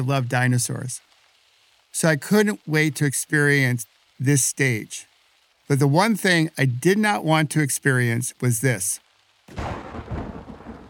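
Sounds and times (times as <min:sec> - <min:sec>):
speech: 0:00.0 - 0:01.1, 0:02.0 - 0:05.1, 0:05.7 - 0:09.9
steady hissing rain: 0:00.0 - 0:10.8
thunder crack and rolling rumble: 0:09.5 - 0:10.8.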